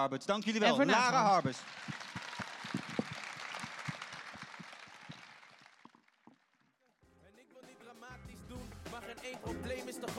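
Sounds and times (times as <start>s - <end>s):
speech: 0.0s - 2.2s
audience applauding with dense overlapping hand claps: 0.8s - 7.0s.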